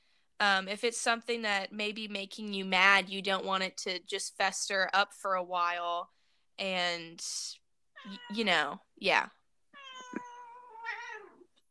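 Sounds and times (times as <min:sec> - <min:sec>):
speech: 0:00.4 - 0:09.4
domestic cat meowing: 0:09.8 - 0:11.4.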